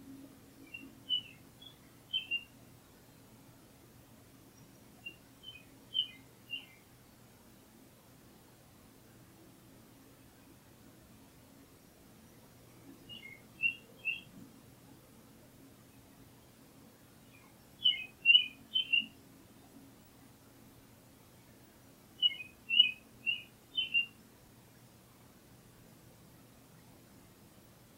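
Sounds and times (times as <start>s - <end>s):
faint low hum: 0.0s - 27.9s
morning birds chirping at dawn: 0.6s - 3.3s, 4.4s - 6.9s, 11.8s - 14.4s, 17.2s - 19.8s, 22.2s - 24.2s.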